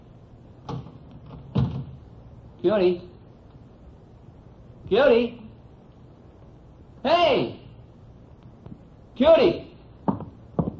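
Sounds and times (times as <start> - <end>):
speech: 2.6 - 3.1, 4.9 - 5.4, 7.0 - 7.6, 9.2 - 9.6
hotel door swinging with a heavy wooden thump: 10.1 - 10.7.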